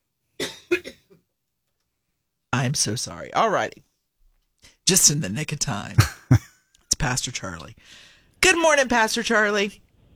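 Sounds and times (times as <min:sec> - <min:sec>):
person coughing: 0:00.4 - 0:01.2, 0:06.0 - 0:06.5
speech: 0:02.5 - 0:03.9, 0:04.9 - 0:09.8.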